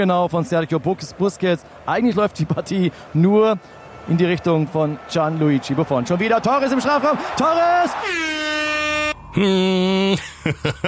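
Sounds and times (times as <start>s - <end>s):
speech: 0.0s - 8.6s, 9.3s - 10.8s
sustained buzzing horn blaring: 7.9s - 10.0s
laughter: 9.4s - 10.8s.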